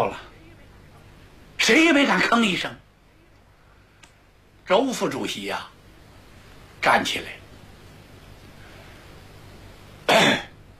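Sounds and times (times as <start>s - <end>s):
speech: 0.0s - 0.3s, 1.6s - 2.8s, 4.7s - 5.7s, 6.8s - 7.4s
storyteller imitating a light cough: 10.1s - 10.6s.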